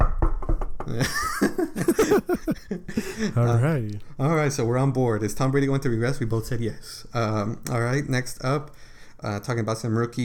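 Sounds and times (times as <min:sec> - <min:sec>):
quick knocks on a wooden surface: 0:00.0 - 0:01.0
people laughing: 0:00.9 - 0:03.5
speech: 0:00.9 - 0:10.2.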